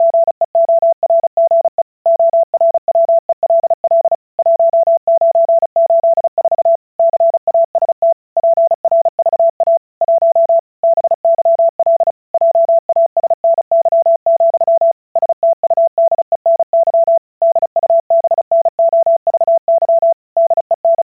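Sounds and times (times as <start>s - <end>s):
Morse code CW beeps at 35 words per minute: 0.0s - 21.1s.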